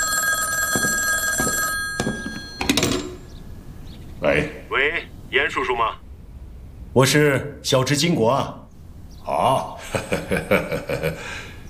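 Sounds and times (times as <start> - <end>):
old-style telephone bell ringing: 0.0 - 3.8
speech: 4.3 - 6.0, 7.0 - 8.6, 9.4 - 11.4
laughter: 9.3 - 11.5.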